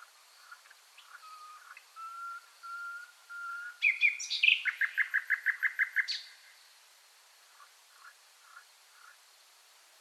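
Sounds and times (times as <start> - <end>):
common nightingale Luscinia megarhynchos singing: 0.0 - 6.7.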